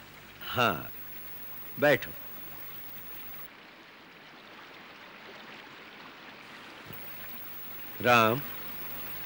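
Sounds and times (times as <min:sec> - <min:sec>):
river water rushing: 0:00.0 - 0:09.2
speech: 0:00.5 - 0:01.0, 0:01.8 - 0:02.2, 0:08.0 - 0:08.6.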